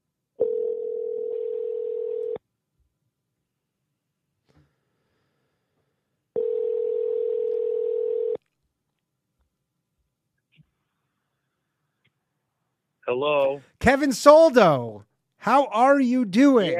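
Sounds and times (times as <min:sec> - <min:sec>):
long steady ringback tones on an outgoing phone call: 0:00.4 - 0:02.4, 0:06.4 - 0:08.4
speech: 0:13.1 - 0:16.7.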